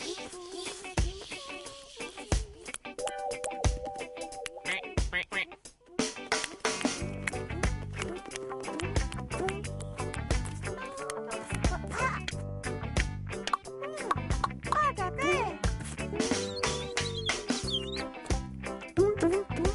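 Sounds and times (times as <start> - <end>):
busy musical backing: 0.0 - 19.7
duckling quacking: 4.6 - 5.6.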